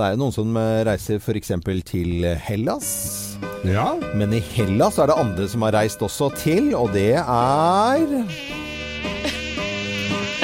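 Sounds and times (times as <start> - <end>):
speech: 0.0 - 8.6
mosquito buzzing with reedy whine: 4.4 - 5.3, 7.4 - 10.4.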